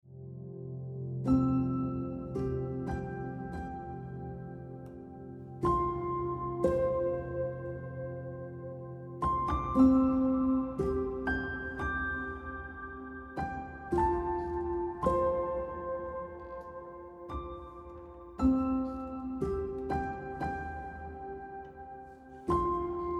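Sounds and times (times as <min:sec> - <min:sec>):
piano ringtone music: 0:00.4 - 0:23.1.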